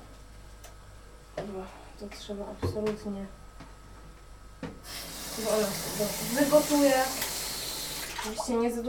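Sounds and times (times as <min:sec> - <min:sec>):
speech: 0:01.4 - 0:03.4, 0:04.8 - 0:07.3, 0:08.2 - 0:08.8
water poured into a cooking pot while cooking: 0:05.0 - 0:08.5.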